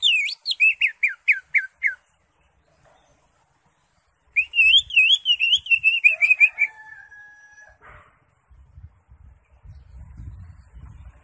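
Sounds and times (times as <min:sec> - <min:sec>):
Greater Green Leafbird song: 0:00.0 - 0:07.0, 0:08.4 - 0:11.2.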